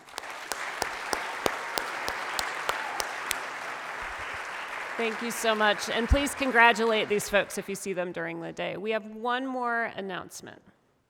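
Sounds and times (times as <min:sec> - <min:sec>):
crowd applauding: 0:00.0 - 0:07.5
speech: 0:05.0 - 0:10.7.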